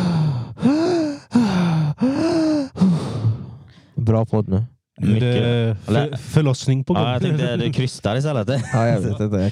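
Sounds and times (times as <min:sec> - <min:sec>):
loud exaggerated heavy breathing: 0:00.0 - 0:04.0
speech: 0:04.1 - 0:09.5.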